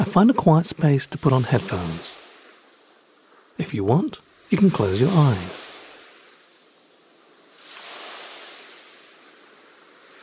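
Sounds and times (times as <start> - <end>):
speech: 0.0 - 2.2, 3.6 - 5.6
ocean surf waves breaking: 0.0 - 10.2.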